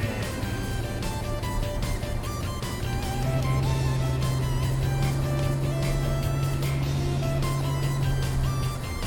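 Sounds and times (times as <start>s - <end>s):
car engine humming as the car climbs uphill: 0.0s - 9.0s
road noise: 0.0s - 9.0s.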